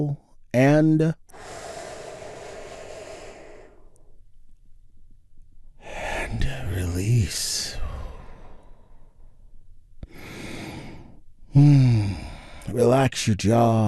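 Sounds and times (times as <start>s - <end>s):
speech: 0.0s - 1.6s, 6.3s - 7.8s, 11.6s - 12.0s, 12.7s - 13.8s
deep breathing with a sighing exhale in a guided relaxation exercise: 1.3s - 4.2s, 7.6s - 12.8s.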